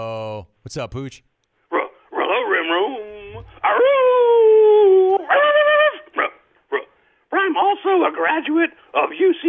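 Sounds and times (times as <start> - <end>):
speech: 0.0 - 1.3, 7.9 - 9.4
person imitating a dog yelp: 1.7 - 6.9
person imitating a dog with whining howls: 1.8 - 6.4.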